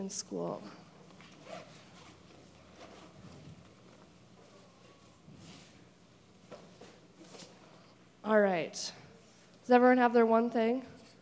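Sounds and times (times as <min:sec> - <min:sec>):
speech: 0:00.0 - 0:00.8, 0:08.2 - 0:09.0, 0:09.7 - 0:10.9
rustling and handling noise: 0:01.0 - 0:08.0
backpack zippers being opened: 0:01.2 - 0:03.6.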